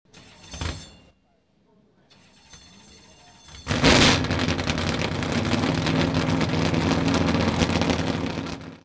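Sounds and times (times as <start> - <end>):
NASCAR Pontiac race car engine starting: 3.7 - 8.8.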